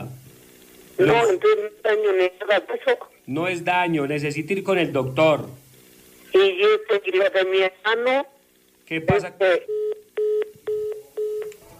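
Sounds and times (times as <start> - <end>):
speech: 1.0 - 5.6, 6.3 - 8.3, 8.9 - 9.8
telephone beeps of a call dropping: 9.6 - 11.6.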